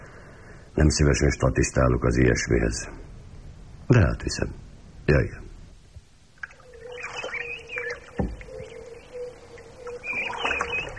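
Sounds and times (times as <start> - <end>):
speech: 0.8 - 3.0, 3.9 - 5.4
birds calling at a reedy lake: 6.4 - 10.9.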